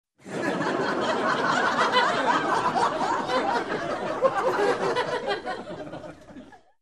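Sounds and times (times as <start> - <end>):
crowd laughing: 0.2 - 6.8.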